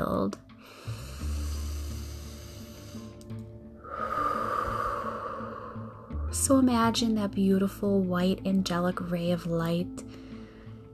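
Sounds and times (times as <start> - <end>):
speech: 0.2 - 0.8, 6.5 - 10.0
deep breathing from the chest and abdomen during a guided relaxation: 0.6 - 6.5, 10.1 - 10.9.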